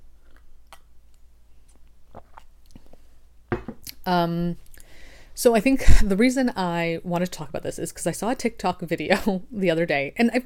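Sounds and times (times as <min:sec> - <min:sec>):
person sipping coffee: 0:00.2 - 0:03.1
speech: 0:04.0 - 0:04.7, 0:05.4 - 0:10.4.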